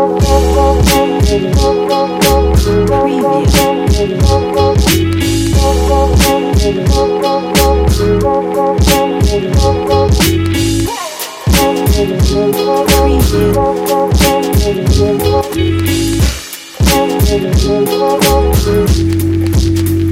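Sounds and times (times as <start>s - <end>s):
hip hop promo ident: 0.2s - 20.0s.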